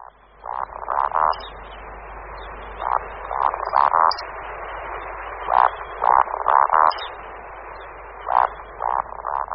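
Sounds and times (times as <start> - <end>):
Eurasian woodcock roding song croaks: 0.0 - 1.6, 2.8 - 4.2, 5.4 - 7.2, 8.2 - 9.5
steady broadband background hiss: 0.0 - 9.5.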